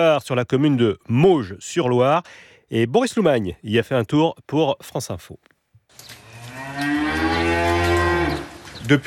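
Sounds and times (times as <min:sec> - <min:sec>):
speech: 0:00.0 - 0:06.2, 0:08.8 - 0:09.0
dairy cow mooing: 0:06.3 - 0:08.5.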